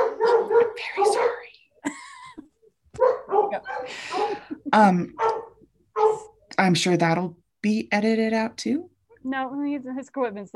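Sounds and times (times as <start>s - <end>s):
dog barking and whining: 0.0s - 1.5s, 3.0s - 4.5s, 5.2s - 6.4s
speech: 4.7s - 5.2s, 6.6s - 10.5s.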